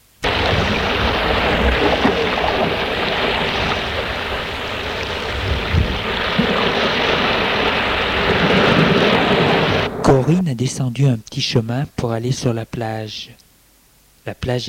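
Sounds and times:
sea surf along the shore by a small village in Brittany: 0.2 - 10.7
speech: 10.3 - 13.4, 14.2 - 14.6.

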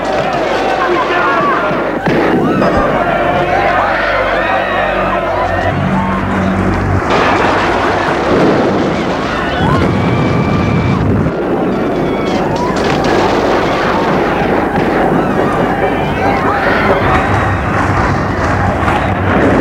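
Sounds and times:
crowd shouting and screaming during a street riot: 0.0 - 19.6
rumbling engine-like noise: 0.0 - 19.6
scattered bangs: 0.0 - 19.6.

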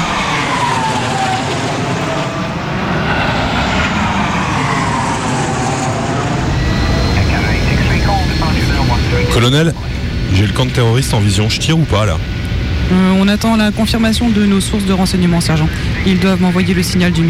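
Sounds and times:
airplane flying overhead: 0.0 - 17.2
voices: 6.4 - 12.3, 12.9 - 17.2
speech: 9.4 - 17.2.

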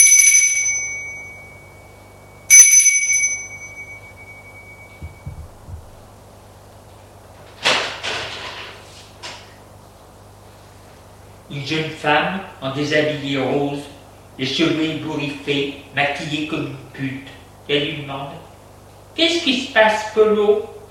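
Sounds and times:
apartment doorbell ringing: 0.0 - 5.5
soft low thuds: 4.9 - 6.2
speech: 11.6 - 18.4, 19.2 - 20.7.

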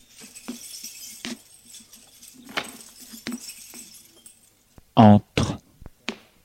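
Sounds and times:
keys jangling: 0.0 - 4.7
speech: 5.0 - 5.3.

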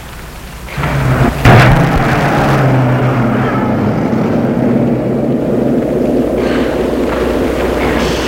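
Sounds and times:
car engine rumbling as the car drives away: 0.0 - 8.2
steady rain-like roar: 0.0 - 8.2
sharp thump: 1.4 - 3.6.

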